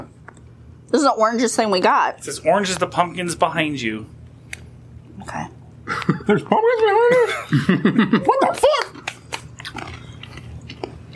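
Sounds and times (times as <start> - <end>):
low steady hum: 0.0 - 11.1
speech: 0.9 - 4.2, 6.3 - 8.9
crunchy biting and chewing of fudge-coated pretzel: 9.0 - 11.1.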